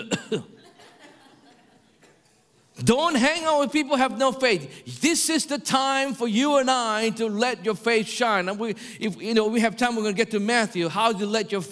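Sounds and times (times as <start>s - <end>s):
deliberate cough: 0.0s - 0.6s
speech: 0.0s - 0.6s, 2.8s - 11.7s
laughter: 0.4s - 2.1s.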